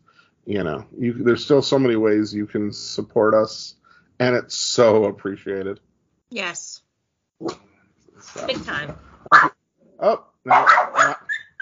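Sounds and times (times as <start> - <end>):
speech: 0.5 - 6.8, 7.4 - 11.2
dog barking: 9.3 - 9.6, 10.5 - 11.5.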